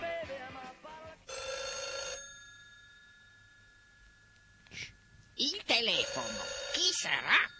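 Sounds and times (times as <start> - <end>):
brassy telephone bell ringing: 1.3 - 7.5.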